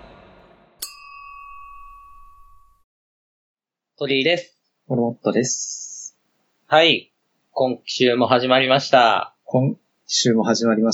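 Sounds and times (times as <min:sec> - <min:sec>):
glasses clinking in a toast: 0:00.8 - 0:02.3
speech: 0:04.0 - 0:05.9, 0:06.7 - 0:10.9.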